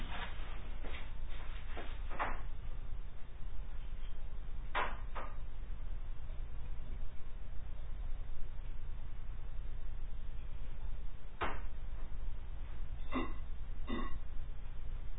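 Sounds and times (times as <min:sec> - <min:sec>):
low steady hum: 0:00.0 - 0:15.1
hiccups: 0:13.0 - 0:14.2.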